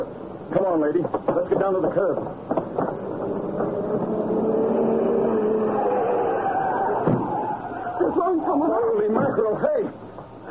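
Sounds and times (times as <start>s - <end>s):
speech: 0.5s - 2.5s, 8.2s - 10.0s
car engine droning while approaching at speed: 2.2s - 9.5s.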